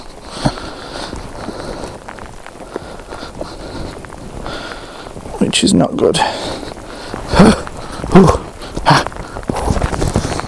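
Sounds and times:
rain pattering outdoors: 0.0s - 10.4s
water dripping: 0.0s - 10.4s
speech: 5.4s - 6.7s, 8.2s - 8.4s.

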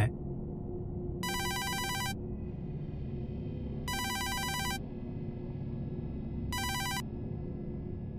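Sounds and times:
steady low hum: 0.0s - 8.1s
telephone ringback tone while calling: 1.2s - 2.2s, 3.9s - 4.8s, 6.6s - 7.0s.

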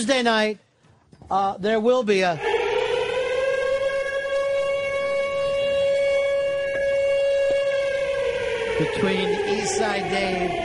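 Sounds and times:
speech: 0.0s - 0.6s, 1.3s - 2.5s, 8.8s - 10.6s
fake siren wail: 2.3s - 10.6s.

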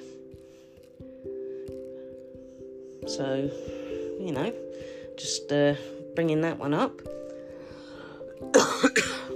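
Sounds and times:
speech: 3.1s - 7.2s
cough: 8.5s - 9.3s.

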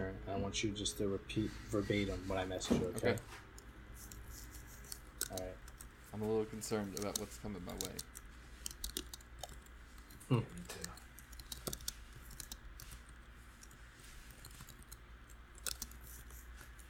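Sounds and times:
low hum: 0.0s - 16.8s
speech: 0.2s - 4.1s, 5.3s - 8.1s, 10.3s - 11.0s
typing on a computer keyboard: 3.0s - 5.9s, 6.6s - 16.6s.

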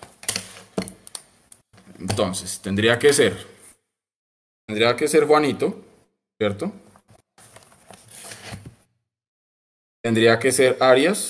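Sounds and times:
speech: 2.0s - 3.5s, 4.7s - 5.8s, 6.4s - 6.8s, 10.1s - 11.2s
paper and pencil being taken out: 7.0s - 8.8s.

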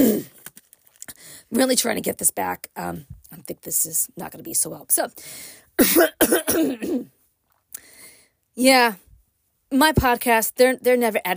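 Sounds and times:
person losing their voice clearing throat: 0.0s - 0.4s, 5.8s - 7.1s
speech: 1.5s - 7.8s, 8.6s - 9.0s, 9.7s - 11.3s.

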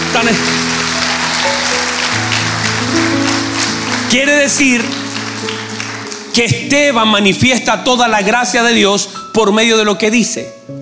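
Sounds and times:
church audience applause: 0.0s - 7.0s
sustained musical tones: 0.0s - 9.0s
speech: 0.2s - 0.6s, 4.1s - 5.6s, 6.4s - 10.8s.

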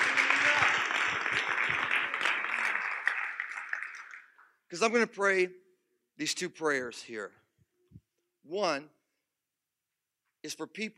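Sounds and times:
audience clapping hands in sustained applause: 0.0s - 4.6s
speech: 4.7s - 5.6s, 6.2s - 7.4s, 8.5s - 9.0s, 10.4s - 10.9s.

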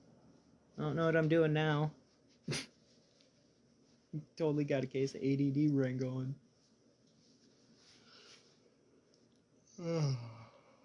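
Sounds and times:
faint noise: 0.0s - 10.8s
speech: 0.8s - 2.7s, 4.1s - 6.4s, 9.8s - 10.4s
big yawn: 9.7s - 10.8s.

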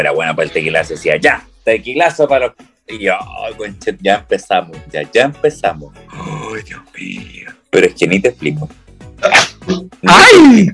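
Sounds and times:
speech: 0.0s - 10.7s
person sneezing: 9.2s - 9.7s.

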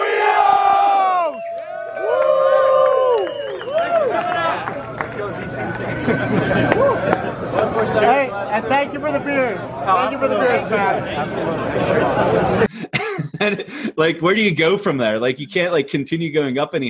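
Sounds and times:
large crowd shouting in unison: 0.0s - 3.2s
crowd cheering and whooping: 0.0s - 7.8s
laughter: 4.2s - 8.0s, 11.0s - 14.1s
speech: 8.6s - 12.7s, 13.4s - 16.8s.

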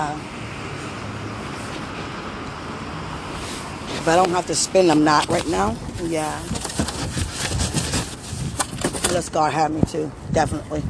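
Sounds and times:
bus passing: 0.0s - 6.5s
road traffic roar at a bus stop: 0.0s - 10.8s
speech: 4.0s - 6.6s, 9.1s - 10.8s.

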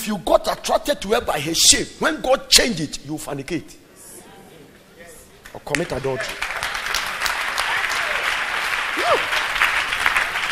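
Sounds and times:
speech: 0.0s - 3.8s, 5.5s - 6.6s
audience clapping: 5.4s - 10.5s.

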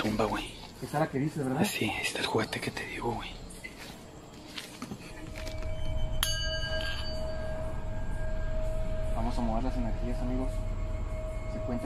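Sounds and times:
low rumbling noise: 0.0s - 11.8s
speech: 0.2s - 3.4s, 9.4s - 10.6s, 11.6s - 11.8s
singing bowl ringing at a tomb: 5.4s - 11.8s.

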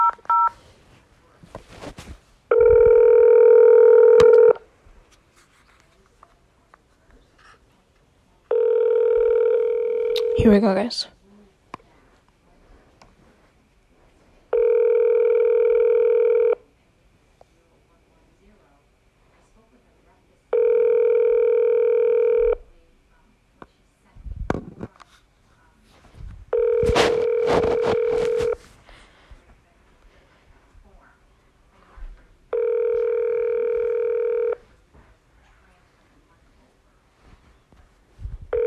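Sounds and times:
buzzy phone line ringback tones of an unanswered call: 0.0s - 0.5s, 2.5s - 4.6s, 8.5s - 10.4s, 14.5s - 16.6s, 20.5s - 22.6s, 26.5s - 28.6s, 32.5s - 34.6s
rustling noise: 0.4s - 2.9s, 4.8s - 7.8s, 11.8s - 14.5s, 24.2s - 31.0s, 34.6s - 38.6s
speech: 10.5s - 11.2s.

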